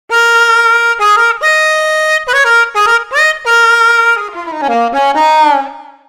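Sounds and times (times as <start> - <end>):
blues music: 0.1 - 6.0.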